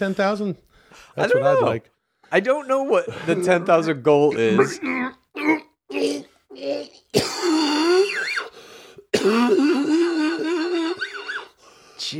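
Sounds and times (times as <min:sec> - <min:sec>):
speech: 0:00.0 - 0:08.0, 0:09.2 - 0:10.5
person clearing throat: 0:04.6 - 0:08.2, 0:09.1 - 0:11.4
loud harsh coughing fit: 0:07.1 - 0:08.1, 0:09.1 - 0:10.9
wheezy voiced gasping: 0:07.6 - 0:12.0.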